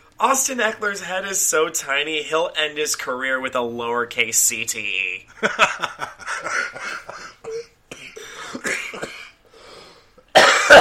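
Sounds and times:
speech: 0:00.2 - 0:07.1
laughter: 0:05.3 - 0:07.4
raspy phlegmy smoker's cough: 0:06.4 - 0:09.4, 0:10.3 - 0:10.7
person clearing throat: 0:06.5 - 0:09.4, 0:10.3 - 0:10.7.

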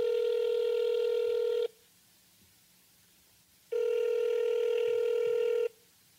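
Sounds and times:
electronic phone line ring tones: 0:00.0 - 0:01.7, 0:03.7 - 0:05.8.

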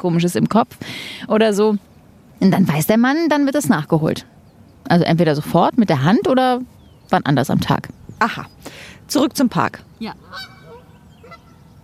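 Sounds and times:
speech: 0:00.0 - 0:10.5
ducks quacking outdoors in a park: 0:10.0 - 0:11.7.

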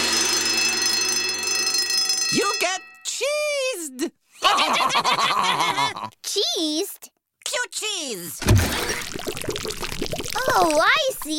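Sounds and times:
sound-activated alarm ringing: 0:00.0 - 0:03.1
speech: 0:03.9 - 0:11.3
laughter: 0:04.4 - 0:06.2.

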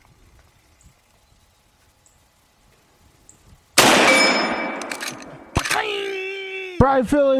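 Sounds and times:
gunshot with long rolling decay: 0:03.8 - 0:05.7
speech: 0:06.8 - 0:07.3.

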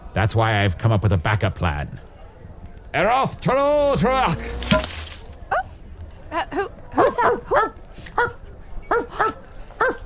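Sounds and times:
speech: 0:00.2 - 0:02.1, 0:02.9 - 0:04.9, 0:06.3 - 0:09.4
dog barking: 0:07.0 - 0:10.0.

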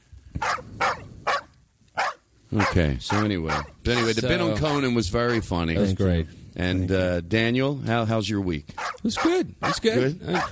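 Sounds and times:
dog barking: 0:00.4 - 0:05.4, 0:08.8 - 0:10.5
speech: 0:02.5 - 0:10.5.

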